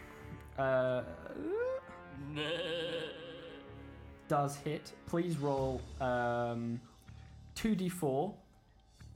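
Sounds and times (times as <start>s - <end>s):
speech: 0.6s - 3.3s, 4.3s - 6.9s, 7.6s - 8.4s
person imitating a goat bleating: 0.9s - 3.7s.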